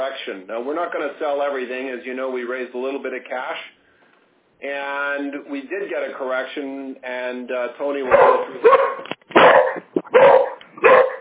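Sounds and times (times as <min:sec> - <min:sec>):
speech: 0:00.0 - 0:03.8, 0:04.6 - 0:10.4
dog barking: 0:08.1 - 0:11.1.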